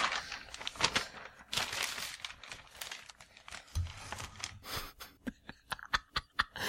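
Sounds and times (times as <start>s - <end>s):
large notebook pages flipped and shuffled: 0.0s - 4.8s.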